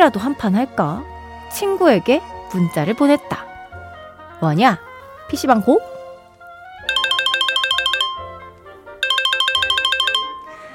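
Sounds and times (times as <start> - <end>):
speech: 0.0 - 3.5, 4.4 - 5.9
bright electronic mobile phone ringtone for an incoming call: 6.8 - 10.7.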